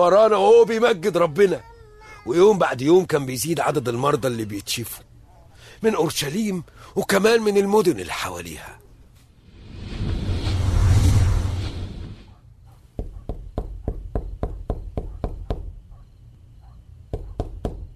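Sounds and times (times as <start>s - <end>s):
speech: 0.0s - 5.1s, 5.8s - 8.8s
rushing whoosh: 9.4s - 12.3s
knocking on a door: 13.0s - 15.7s, 17.1s - 17.9s.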